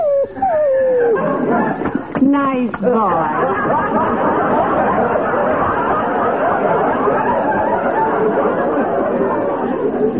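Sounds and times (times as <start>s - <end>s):
dog whimpering after a train trip: 0.0s - 1.8s
laughter: 0.9s - 2.2s, 2.8s - 10.1s
speech: 2.3s - 4.3s.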